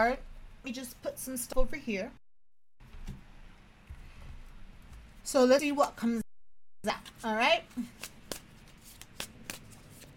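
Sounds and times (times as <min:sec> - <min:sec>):
speech: 0:00.0 - 0:02.2, 0:05.2 - 0:06.2, 0:06.8 - 0:08.1
tarot card deck being shuffled: 0:07.9 - 0:10.1.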